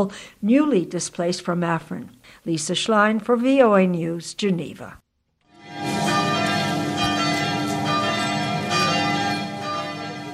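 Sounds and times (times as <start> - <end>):
speech: 0.0 - 5.0
church bells pealing: 5.5 - 10.3.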